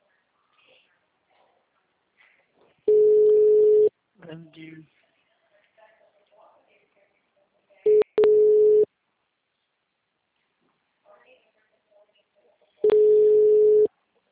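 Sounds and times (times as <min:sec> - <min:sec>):
telephone dialing tones and busy signal: 0:02.9 - 0:03.9, 0:07.9 - 0:08.9, 0:12.8 - 0:13.9
speech: 0:04.3 - 0:05.0.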